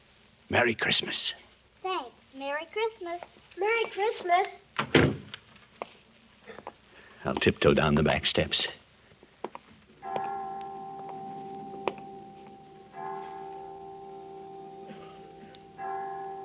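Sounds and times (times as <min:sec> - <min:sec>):
speech: 0:00.5 - 0:01.4, 0:02.4 - 0:05.0, 0:07.2 - 0:08.8
chimes of a children's home striking five o'clock: 0:10.0 - 0:16.4.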